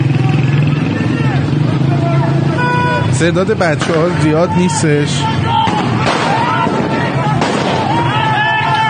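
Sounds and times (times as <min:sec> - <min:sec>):
dense continuous crowd and street noise: 0:00.0 - 0:08.8
speech: 0:03.2 - 0:06.2
grenades exploding on a fire-lit city street during unrest: 0:05.6 - 0:08.3.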